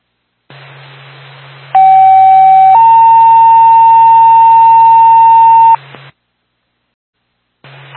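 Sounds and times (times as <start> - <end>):
ambulance dispatch electronic paging tones over a radio channel: 1.8 - 5.8.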